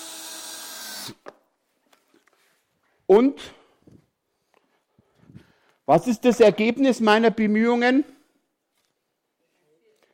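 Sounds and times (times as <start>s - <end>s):
cordless screwdriver driving screws: 0.0s - 1.2s
speech: 3.1s - 3.6s, 5.9s - 8.2s.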